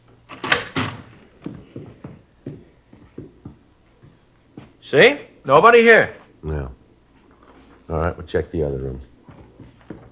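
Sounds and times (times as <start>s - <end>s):
dining-room door of a house being opened: 0.3s - 1.2s
speech: 4.9s - 6.2s, 7.9s - 9.1s.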